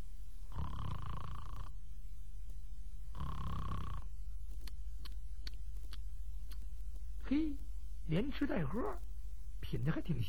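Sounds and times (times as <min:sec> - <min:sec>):
steady low hum: 0:00.0 - 0:10.2
man snoring behind a tavern counter: 0:00.5 - 0:01.7, 0:03.1 - 0:04.1
faint clicks: 0:04.5 - 0:07.0
speech: 0:07.3 - 0:09.1, 0:09.7 - 0:10.2.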